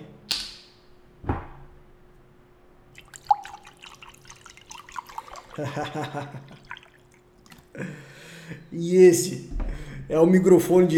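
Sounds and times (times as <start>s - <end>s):
water from a bottle dripping onto head: 3.0s - 7.7s
laughter: 5.6s - 6.6s
speech: 5.6s - 6.7s, 7.8s - 10.9s.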